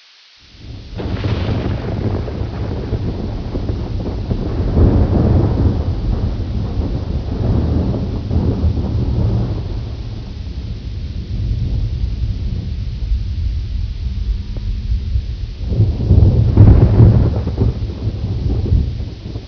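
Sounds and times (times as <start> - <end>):
ambient thunder: 0.5 - 19.4.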